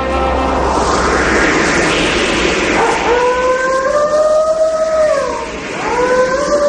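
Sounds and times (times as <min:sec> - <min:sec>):
steady rush of wind-like noise: 0:00.0 - 0:06.6
lone wolf howling: 0:02.8 - 0:06.6.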